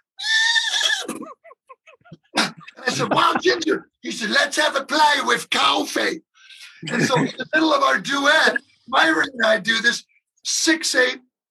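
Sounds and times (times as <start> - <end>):
polo pony whinnying loudly and shrilly: 0.0 - 1.5
laughter: 0.8 - 4.0, 6.6 - 7.9
speech: 2.9 - 11.3.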